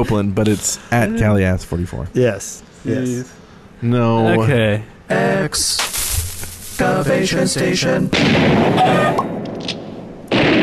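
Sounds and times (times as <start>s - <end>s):
speech: 0.0s - 6.0s, 6.8s - 9.8s
explosions: 5.8s - 6.9s, 8.1s - 10.6s
loud dense gunfire: 8.1s - 10.6s.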